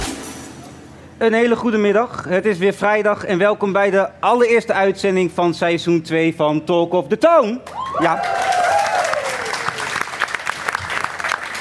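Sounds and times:
speech: 1.2 - 8.5
audience whoops and cheers: 7.6 - 10.0
full studio audience applauding at a broadcast: 7.7 - 11.5.

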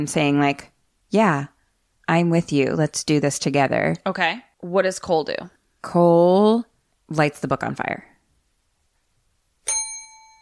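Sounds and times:
speech: 0.0 - 1.5, 2.1 - 8.1
bright metallic bell strike: 9.6 - 10.4.

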